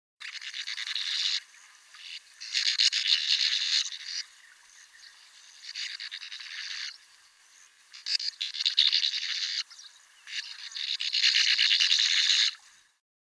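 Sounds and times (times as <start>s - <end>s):
sand martin calling: 0.2s - 12.9s.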